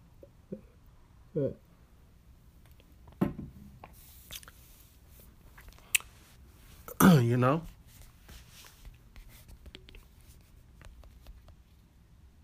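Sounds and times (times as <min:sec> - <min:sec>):
speech: 0:01.4 - 0:01.7, 0:07.2 - 0:07.8
wet mouth sounds: 0:03.8 - 0:04.7, 0:05.5 - 0:06.2
person sipping lemon water: 0:03.8 - 0:04.8, 0:05.5 - 0:06.1.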